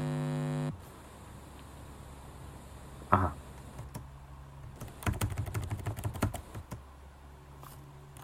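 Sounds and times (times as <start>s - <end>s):
low electrical hum: 0.0s - 8.2s
computer keyboard keys clicking: 4.8s - 6.8s.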